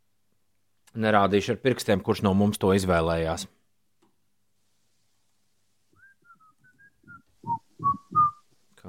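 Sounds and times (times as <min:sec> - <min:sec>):
speech: 0:00.9 - 0:03.6
person whistling a short tune: 0:06.0 - 0:08.4.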